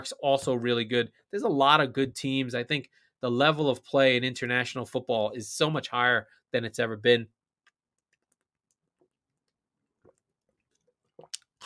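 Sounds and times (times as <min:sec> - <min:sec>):
speech: 0:00.0 - 0:07.4
wet mouth clicks: 0:07.6 - 0:11.6
person drinking water: 0:07.7 - 0:11.6
gulping and swallowing: 0:10.0 - 0:11.6.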